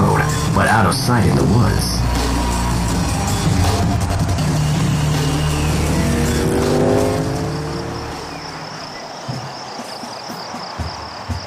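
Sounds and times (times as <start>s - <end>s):
speech: 0.8s - 2.2s
motorcycles racing past on a road beside woods: 2.0s - 8.9s.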